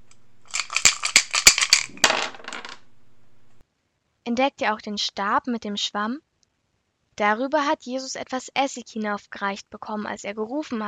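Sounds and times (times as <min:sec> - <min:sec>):
dice rattling in a dice cup: 0:00.5 - 0:02.9
speech: 0:04.3 - 0:06.3, 0:07.2 - 0:10.8.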